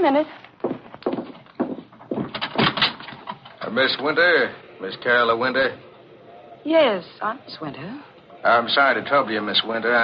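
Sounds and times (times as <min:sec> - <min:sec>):
speech: 0:00.0 - 0:00.4, 0:03.7 - 0:05.9, 0:06.6 - 0:10.0
knocking at a door: 0:00.7 - 0:03.2.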